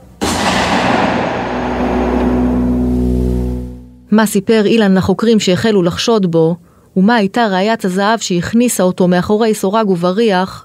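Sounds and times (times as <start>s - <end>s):
gunshot with long heavy rumbling echo: 0.2s - 3.9s
speech: 4.1s - 10.6s.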